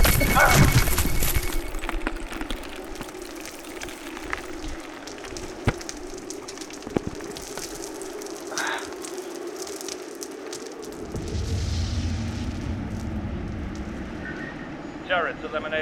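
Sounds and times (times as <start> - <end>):
steady crackling noise: 0.0 - 15.7
gravity charge explosion: 11.0 - 15.6.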